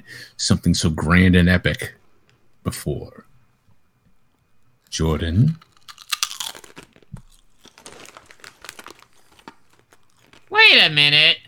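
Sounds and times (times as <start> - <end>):
speech: 0.1 - 2.0, 2.6 - 3.3, 4.9 - 5.7, 10.7 - 11.4
chip being bitten and chewed: 4.9 - 11.4.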